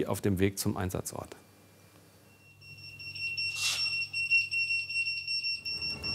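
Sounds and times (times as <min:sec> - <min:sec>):
speech: 0:00.0 - 0:01.5
fire brigade electronic alarm tone: 0:02.4 - 0:06.1.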